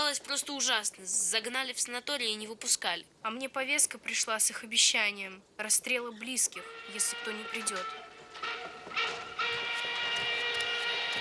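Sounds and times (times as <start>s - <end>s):
speech: 0.1s - 9.2s
thin metallic squeal: 6.6s - 11.1s
wooden livestock freight wagon carrying people rolling along: 6.6s - 11.1s.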